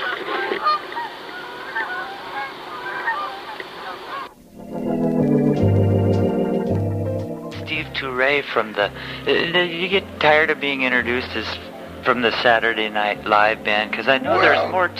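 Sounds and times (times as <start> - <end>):
flock of geese honking while flying overhead: 0.0 - 6.9, 8.8 - 14.9
sustained instrumental tones: 4.3 - 14.9
speech: 8.2 - 14.9.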